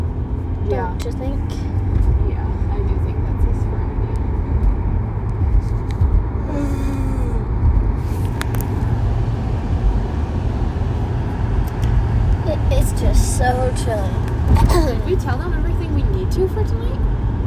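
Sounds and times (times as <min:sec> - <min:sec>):
manual-transmission car engine and road drone while driving: 0:00.0 - 0:17.4
speech: 0:00.7 - 0:02.8, 0:13.4 - 0:17.0.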